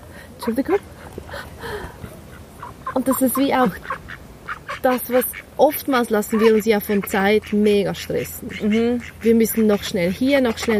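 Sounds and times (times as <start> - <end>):
speech: 0.4 - 1.9, 3.0 - 4.0, 4.8 - 10.7
duck quacking: 2.3 - 10.7.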